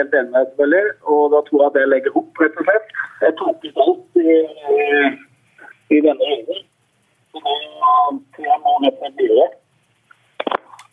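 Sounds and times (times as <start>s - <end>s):
speech: 0.0s - 5.3s, 5.9s - 6.7s, 7.4s - 9.6s
thin band-limited caller's voice over telephone line: 0.0s - 6.7s, 7.4s - 9.6s
brief crackle of noise: 1.4s - 10.9s.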